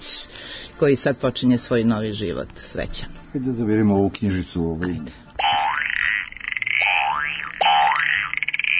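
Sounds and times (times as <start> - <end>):
speech: 0.8 - 5.2
recorded frog croak from a children's sound book: 5.4 - 8.7.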